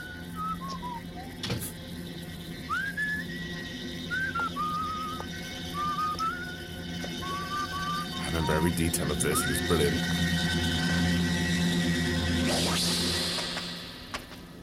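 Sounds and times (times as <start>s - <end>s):
man whistling a slow wandering tune: 0.0s - 1.4s, 2.6s - 10.0s
steady low hum: 0.0s - 14.6s
speech: 8.4s - 10.8s.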